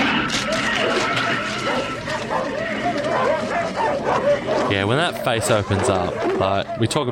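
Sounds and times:
dog barking frantically with yips and whining: 0:00.0 - 0:07.1
speech: 0:04.7 - 0:07.1.

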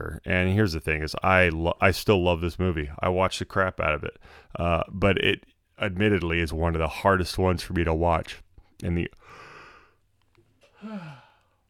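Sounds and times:
speech: 0:00.0 - 0:09.4, 0:10.8 - 0:11.2
person yawning: 0:10.8 - 0:11.5.

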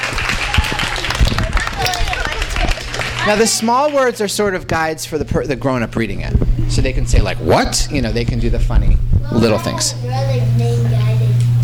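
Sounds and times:
small group applauding: 0:00.0 - 0:04.2
indistinct voices murmuring: 0:00.3 - 0:11.6
speech: 0:03.3 - 0:11.0.

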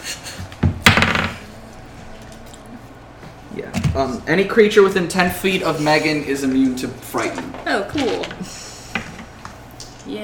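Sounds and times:
dice clattering onto a wooden tabletop: 0:00.8 - 0:01.4
speech: 0:04.0 - 0:08.6.

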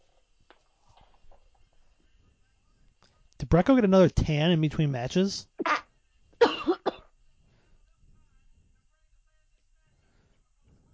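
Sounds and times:
speech: 0:03.4 - 0:05.7
person coughing: 0:06.4 - 0:07.1.

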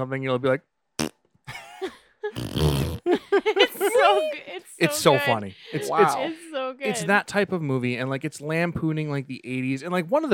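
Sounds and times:
speech: 0:00.0 - 0:01.1, 0:02.3 - 0:10.3
human voice imitating fart sounds: 0:02.4 - 0:03.1
laughter: 0:03.0 - 0:07.0.

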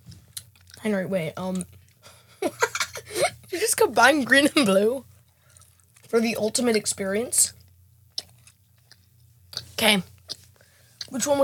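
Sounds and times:
low hum: 0:00.0 - 0:11.4
crunchy chewing: 0:00.1 - 0:00.8, 0:05.1 - 0:06.8, 0:07.5 - 0:11.2
speech: 0:00.8 - 0:01.8, 0:03.5 - 0:05.1, 0:06.1 - 0:07.6, 0:09.8 - 0:10.1, 0:11.1 - 0:11.4
laughter: 0:02.4 - 0:03.3.

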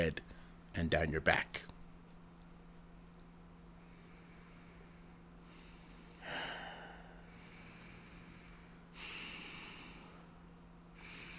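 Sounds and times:
speech: 0:00.0 - 0:00.2, 0:00.8 - 0:01.7
faint steady hum: 0:00.0 - 0:11.3
heavy breathing through the nose: 0:03.9 - 0:10.4, 0:11.0 - 0:11.3.

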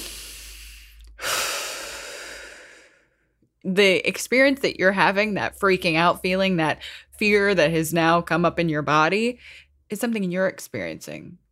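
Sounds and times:
deep breath: 0:00.0 - 0:03.4
speech: 0:03.6 - 0:11.4.

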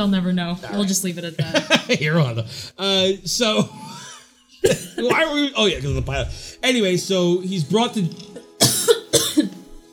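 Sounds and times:
speech: 0:00.0 - 0:04.0, 0:04.6 - 0:08.3
harsh coughs: 0:03.7 - 0:05.3, 0:08.6 - 0:09.7.

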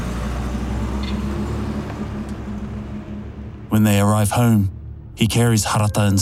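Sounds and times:
car engine drone while driving along a road: 0:00.0 - 0:06.1
car road rumble: 0:00.0 - 0:06.1
speech: 0:03.7 - 0:06.1.

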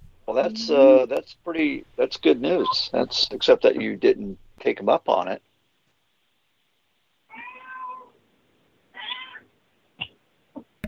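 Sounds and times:
speech: 0:00.4 - 0:05.5
cat chirping: 0:02.4 - 0:03.0, 0:07.3 - 0:08.1, 0:09.0 - 0:09.4
cat meowing: 0:07.3 - 0:08.2, 0:08.9 - 0:09.5.

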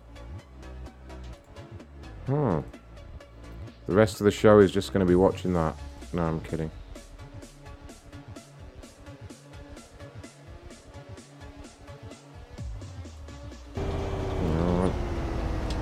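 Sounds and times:
speech: 0:02.3 - 0:02.8, 0:03.9 - 0:06.8
bus engine drone in a bus-simulator video game: 0:13.7 - 0:15.8
road noise: 0:13.8 - 0:15.8.

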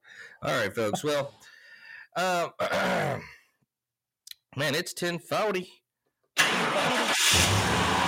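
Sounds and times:
speech: 0:00.4 - 0:01.5, 0:02.2 - 0:03.3, 0:04.6 - 0:05.8, 0:07.3 - 0:07.6
car engine cranking to life and idling: 0:06.4 - 0:08.0.

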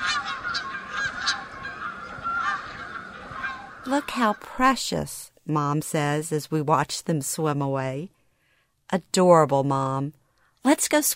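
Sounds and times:
Canada geese honking: 0:00.0 - 0:04.5
speech: 0:03.9 - 0:08.2, 0:08.9 - 0:11.1.

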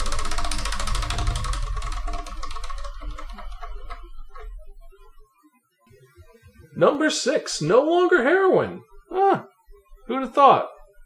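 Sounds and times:
spinning prize wheel ticking: 0:00.0 - 0:04.7
speech: 0:06.8 - 0:09.5, 0:10.1 - 0:10.7.

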